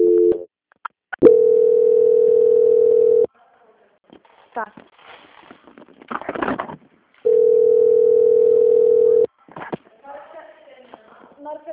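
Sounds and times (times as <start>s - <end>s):
telephone tone during bank call transfer: 0.0s - 0.4s, 1.2s - 3.3s, 7.3s - 9.3s.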